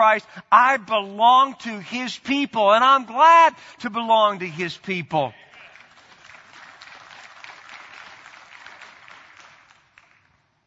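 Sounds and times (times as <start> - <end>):
speech: 0.0 - 5.4
crowd applauding: 5.4 - 10.6.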